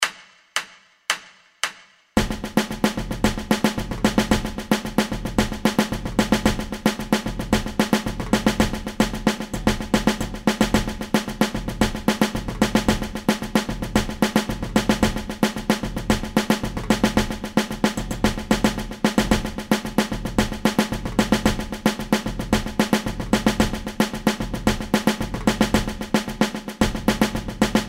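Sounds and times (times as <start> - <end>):
samba snare drum rhythm: 1.2 - 27.8.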